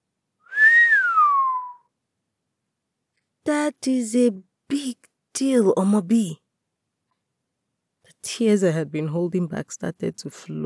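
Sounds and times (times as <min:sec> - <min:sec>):
person whistling: 0:00.4 - 0:01.9
speech: 0:03.5 - 0:06.4, 0:08.2 - 0:10.6.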